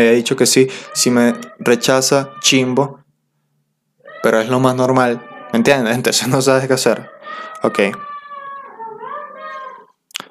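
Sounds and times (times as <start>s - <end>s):
speech: 0.0s - 3.0s, 4.2s - 8.1s
dog howling: 0.8s - 2.9s, 4.0s - 9.9s.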